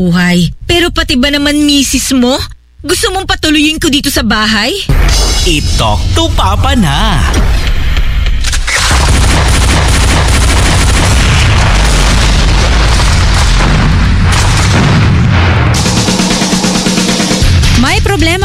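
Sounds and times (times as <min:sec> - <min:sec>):
speech: 0:00.0 - 0:07.7, 0:17.8 - 0:18.4
explosion boom: 0:04.9 - 0:18.4.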